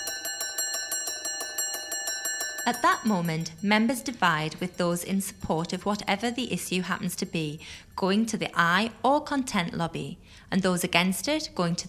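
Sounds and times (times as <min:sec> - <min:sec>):
parliamentary division bell ringing: 0:00.0 - 0:07.8
speech: 0:02.6 - 0:11.8.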